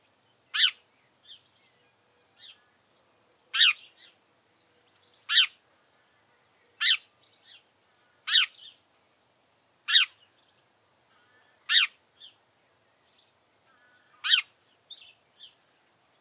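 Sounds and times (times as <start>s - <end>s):
house sparrow Passer domesticus chirping: 0.5s - 4.2s, 4.8s - 8.8s, 9.9s - 12.4s, 13.1s - 15.8s.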